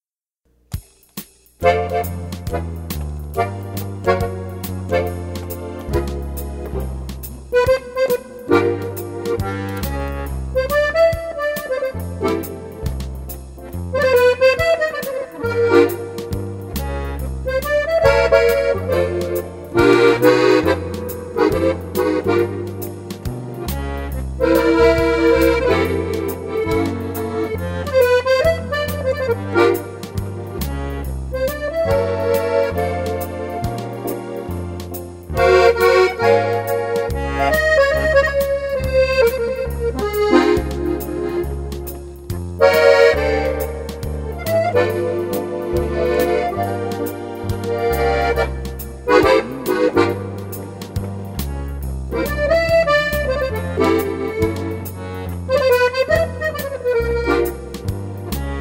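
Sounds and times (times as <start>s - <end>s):
French band playing: 1.6s - 58.5s.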